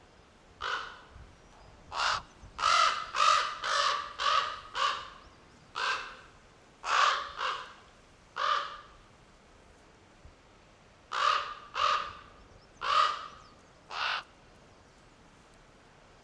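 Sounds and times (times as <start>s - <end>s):
raven cawing: 0.6s - 1.2s, 1.9s - 9.0s, 11.1s - 14.3s.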